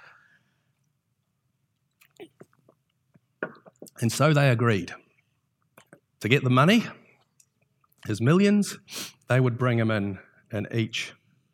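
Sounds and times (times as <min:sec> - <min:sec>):
wet mouth clicks and gulps: 0:00.8 - 0:04.0, 0:05.2 - 0:06.2, 0:07.2 - 0:08.0
person sipping water: 0:01.7 - 0:04.0, 0:05.7 - 0:06.2
speech: 0:04.0 - 0:05.0, 0:06.2 - 0:07.0, 0:08.0 - 0:11.5.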